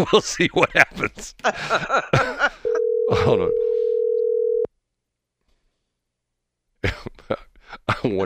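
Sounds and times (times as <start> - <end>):
speech: 0.0 - 2.5, 3.1 - 3.7, 8.0 - 8.2
laughter: 0.0 - 3.5, 6.8 - 8.2
telephone dial tone while placing a call: 2.7 - 4.7.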